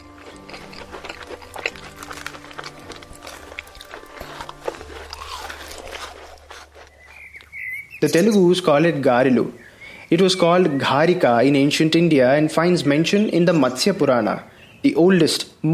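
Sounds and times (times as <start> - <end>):
crisp bite into a fried urad-batter fritter: 0.0 - 7.6
speech: 8.0 - 15.7.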